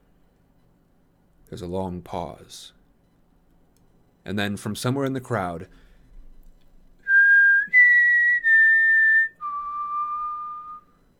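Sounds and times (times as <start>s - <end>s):
speech: 1.5s - 2.8s, 4.2s - 5.8s
person whistling a four-note tune: 7.0s - 11.0s.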